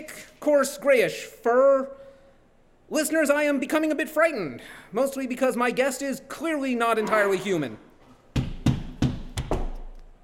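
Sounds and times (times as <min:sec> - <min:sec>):
speech: 0:00.4 - 0:02.0, 0:02.9 - 0:07.9
firm knocks on a wooden door: 0:08.4 - 0:09.8.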